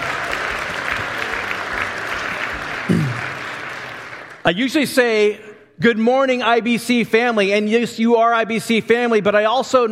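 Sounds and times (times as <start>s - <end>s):
church congregation applauding: 0.0s - 5.3s
speech: 2.9s - 3.2s, 4.5s - 9.9s.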